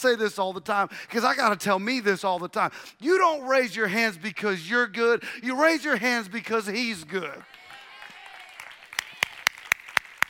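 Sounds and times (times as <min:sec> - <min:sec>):
speech: 0:00.0 - 0:07.6
crowd clapping in a steady even rhythm: 0:07.0 - 0:10.2.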